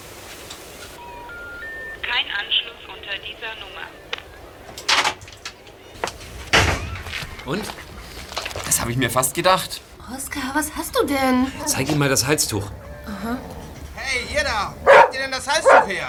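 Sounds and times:
payphone dialing beeps in a phone booth: 1.0s - 4.2s
speech: 3.2s - 4.1s, 7.4s - 7.8s, 8.7s - 16.0s.

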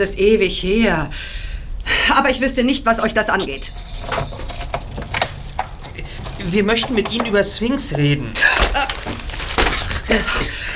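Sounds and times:
speech: 0.0s - 1.4s, 2.1s - 4.3s, 6.4s - 8.5s, 10.1s - 10.6s
soft knocks and shuffles: 3.6s - 10.7s
papers rustling and scattering: 3.7s - 10.7s
briefcase hitting the floor with a solid thud: 4.0s - 10.6s.

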